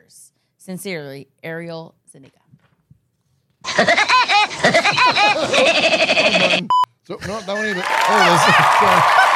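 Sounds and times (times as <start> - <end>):
speech: 0.1 - 2.4, 3.7 - 9.2
cartoon woodpecker laugh sound effect: 3.7 - 6.7.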